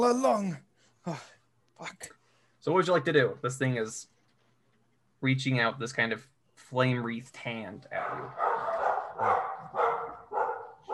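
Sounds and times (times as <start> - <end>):
speech: 0.0 - 4.1, 5.2 - 9.4
dogs barking sharply: 8.0 - 10.9.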